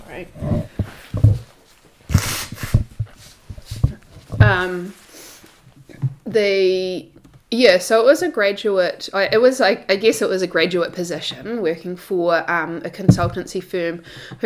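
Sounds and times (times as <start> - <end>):
speech: 0.1 - 0.8, 4.5 - 5.0, 6.3 - 14.4
nose blowing: 2.1 - 3.4.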